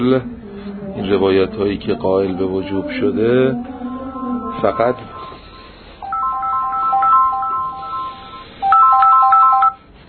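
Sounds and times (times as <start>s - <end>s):
speech: 0.0s - 0.4s, 1.0s - 3.7s, 4.6s - 5.2s
bright electronic phone ringtone melody of quick high beeping notes: 4.0s - 9.8s.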